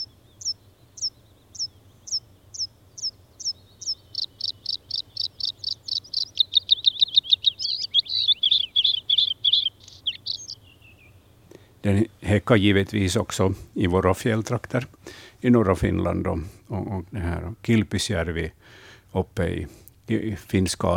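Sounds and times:
bluethroat singing in Lapland: 0.0 - 18.6
faint low hum: 0.0 - 20.9
speech: 11.9 - 20.9.

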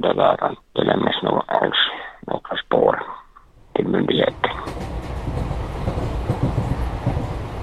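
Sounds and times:
speech: 0.0 - 3.0
train carriage rumbling on rails: 4.2 - 7.6
train carriage wheels clacking on rails: 4.4 - 7.6.

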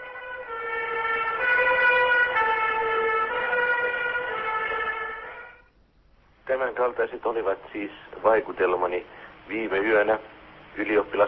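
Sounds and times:
ambulance sirens wailing: 0.0 - 5.7
speech: 6.8 - 11.2.

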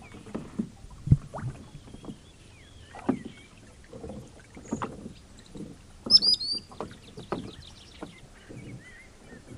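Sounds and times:
rowing boat oars thumping and splashing on a lake: 0.0 - 9.5
common sandpiper trilled call: 6.1 - 6.7.

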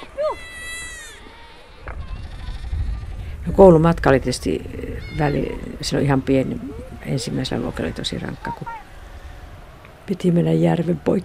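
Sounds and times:
young goat bleating in cold weather: 0.2 - 3.1, 4.9 - 5.8
speech: 3.5 - 8.8, 10.1 - 11.2.

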